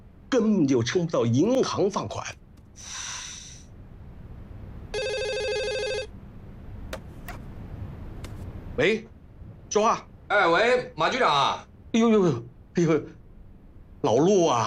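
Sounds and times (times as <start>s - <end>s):
speech: 0.3s - 3.0s, 8.8s - 9.1s, 9.7s - 13.2s, 14.0s - 14.6s
telephone ringing in a buzzy electronic burst: 4.9s - 6.1s.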